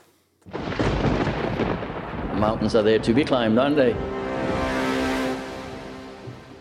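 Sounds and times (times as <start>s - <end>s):
podcast jingle with rumbling thunder-like crash and warbling tones: 0.6s - 6.5s
speech: 2.4s - 4.1s.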